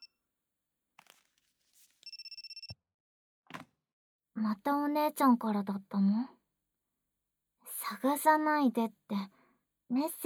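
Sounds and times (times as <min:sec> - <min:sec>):
handling noises: 0:01.0 - 0:02.1
telephone bell ringing: 0:02.0 - 0:02.8
speech: 0:04.4 - 0:06.4, 0:07.9 - 0:10.2.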